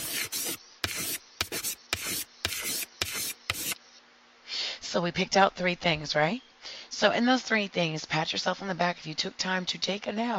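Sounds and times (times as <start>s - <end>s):
pen scratching across paper while writing: 0.0s - 3.8s
speech: 4.9s - 10.3s.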